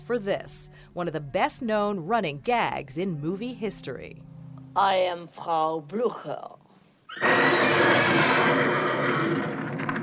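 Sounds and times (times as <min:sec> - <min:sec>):
speech: 0:00.1 - 0:08.7
horse neighing at a horse farm in the hills above Los Angeles: 0:07.1 - 0:09.6.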